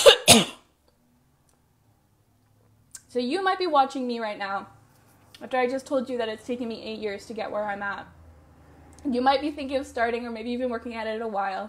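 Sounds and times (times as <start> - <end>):
person coughing: 0.0 - 0.7
speech: 0.4 - 0.6, 3.2 - 4.8, 5.4 - 8.2, 9.0 - 11.6.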